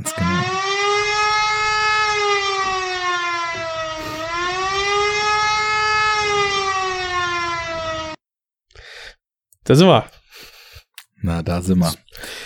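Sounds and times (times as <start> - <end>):
siren wailing: 0.0 - 8.2
speech: 9.7 - 10.2, 11.2 - 12.4.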